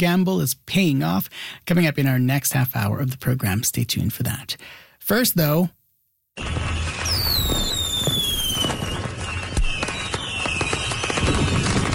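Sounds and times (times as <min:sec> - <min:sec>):
speech: 0:00.0 - 0:05.8, 0:06.4 - 0:07.1
fireworks crackling and popping in a summer sky in Manitoba: 0:06.4 - 0:11.9.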